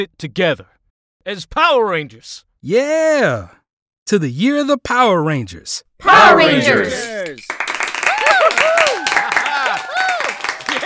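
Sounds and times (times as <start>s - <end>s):
speech: 0.0s - 7.6s
group of people clapping: 6.4s - 10.8s
group of people cheering with excited shouts and whoops: 8.0s - 10.8s.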